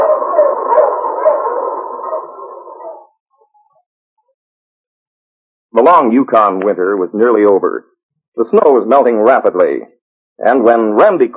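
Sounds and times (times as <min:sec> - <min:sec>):
dog howling: 0:00.0 - 0:03.7
speech: 0:05.8 - 0:11.3.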